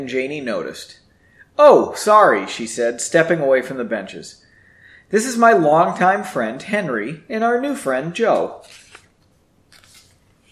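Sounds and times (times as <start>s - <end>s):
speech: 0.0s - 1.0s, 1.6s - 4.4s, 5.1s - 8.9s
book page being turned: 8.4s - 10.5s.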